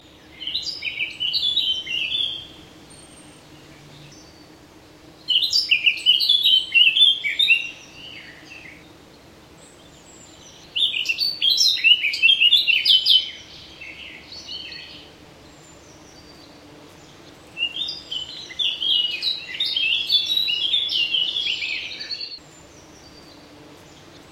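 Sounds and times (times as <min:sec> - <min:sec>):
Sardinian warbler singing: 0:00.0 - 0:24.3.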